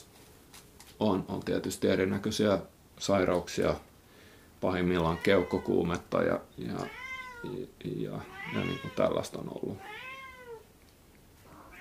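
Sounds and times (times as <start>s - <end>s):
faint noise: 0.0s - 11.7s
speech: 1.0s - 3.9s, 4.6s - 10.1s
cat meowing: 5.0s - 5.8s, 6.8s - 7.6s, 8.2s - 9.2s, 9.8s - 10.6s, 11.5s - 11.7s.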